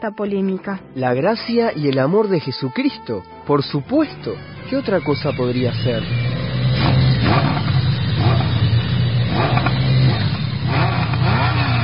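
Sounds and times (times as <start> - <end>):
speech: 0.0 - 6.4
motorcycles arriving with engines revving: 4.6 - 11.8.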